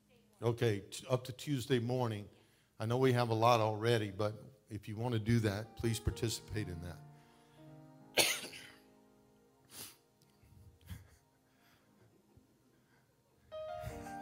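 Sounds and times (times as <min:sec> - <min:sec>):
speech: 0:00.4 - 0:07.1
person coughing: 0:08.2 - 0:08.8
throat clearing: 0:08.2 - 0:08.8.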